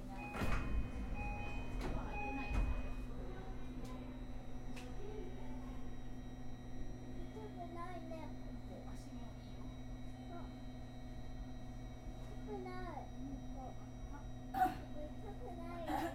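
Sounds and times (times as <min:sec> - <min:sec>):
steady electrical hum from the idling carriage: 0:00.0 - 0:16.1
train sliding doors opening on platform side: 0:00.2 - 0:02.8.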